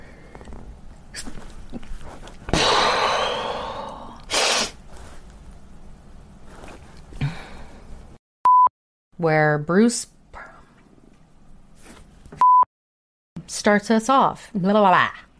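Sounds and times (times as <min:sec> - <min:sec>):
rustling: 0:00.4 - 0:02.5, 0:04.8 - 0:07.2
person sneezing: 0:02.5 - 0:04.8
person sniffling: 0:02.5 - 0:04.8
speech: 0:09.2 - 0:10.2, 0:13.6 - 0:15.2.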